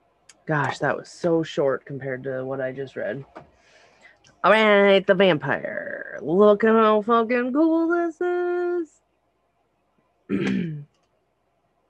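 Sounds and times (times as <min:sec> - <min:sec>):
speech: 0:00.5 - 0:03.5, 0:04.4 - 0:09.0, 0:10.3 - 0:10.9
rough gravelly throat clearing: 0:10.3 - 0:10.9.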